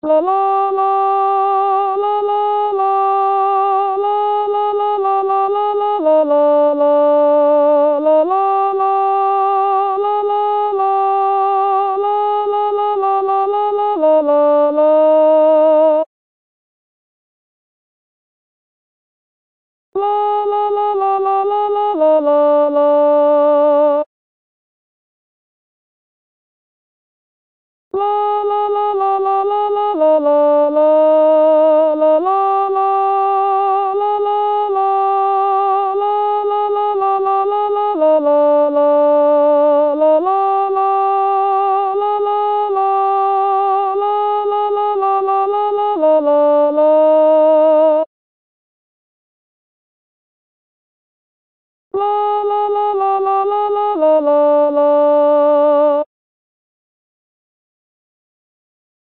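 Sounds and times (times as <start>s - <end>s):
alto saxophone melody: 0.0s - 16.1s, 20.0s - 24.1s, 28.0s - 48.1s, 52.0s - 56.1s.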